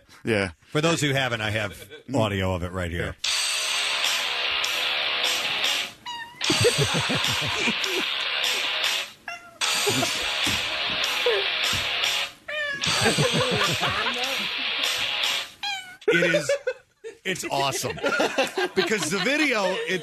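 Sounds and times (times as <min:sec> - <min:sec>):
speech: 0:00.2 - 0:03.3, 0:06.6 - 0:08.2, 0:09.8 - 0:10.6, 0:13.0 - 0:14.5, 0:16.1 - 0:20.0
loud music: 0:03.3 - 0:15.6
cat meowing along with a song: 0:06.0 - 0:06.5, 0:15.6 - 0:16.1
laughter: 0:06.5 - 0:08.8, 0:09.8 - 0:10.3, 0:12.8 - 0:14.8, 0:16.1 - 0:20.0.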